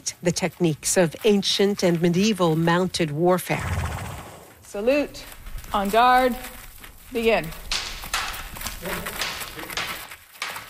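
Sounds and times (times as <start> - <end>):
speech: 0.0 - 3.9, 4.7 - 7.6
broad wash of outdoor noise: 0.0 - 10.6
war horses hooves clip-clopping: 0.0 - 10.6
horse snorting or whinnying: 3.6 - 4.5.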